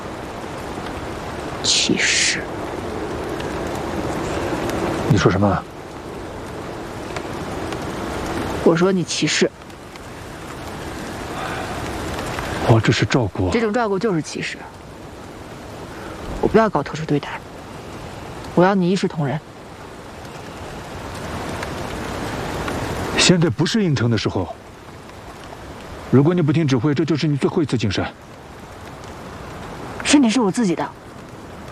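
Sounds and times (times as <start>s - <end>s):
steady rain: 0.0s - 31.7s
speech: 1.6s - 2.6s, 5.1s - 5.7s, 8.7s - 9.6s, 12.8s - 14.8s, 16.5s - 17.4s, 18.6s - 19.5s, 23.2s - 24.6s, 26.1s - 28.3s, 30.1s - 31.0s.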